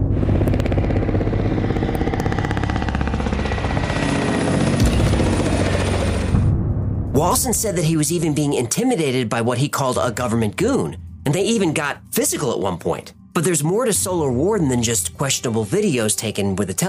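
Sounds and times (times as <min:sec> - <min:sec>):
helicopter rotor chop overhead: 0:00.1 - 0:06.5
speech: 0:07.4 - 0:16.8.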